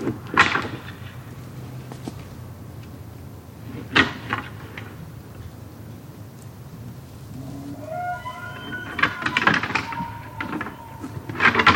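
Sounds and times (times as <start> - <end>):
bull elk rising tonal squeal: 7.3 - 11.7
two bull elk clacking antlers while fighting in Upper Mammoth, Yellowstone: 7.3 - 11.7.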